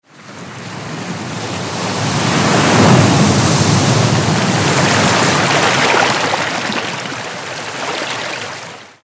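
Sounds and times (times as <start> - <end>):
sea waves crashing on a rocky point: 0.4 - 9.0.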